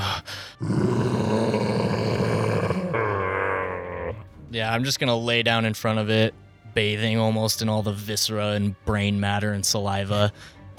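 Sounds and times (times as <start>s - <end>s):
giant toad bellowing death roar: 0.6s - 4.3s
speech: 4.6s - 10.7s.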